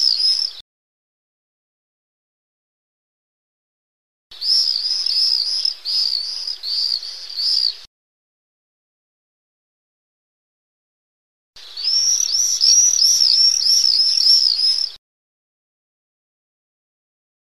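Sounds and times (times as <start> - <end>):
common swifts screaming: 0.0 - 0.6, 4.4 - 7.9, 11.6 - 15.0.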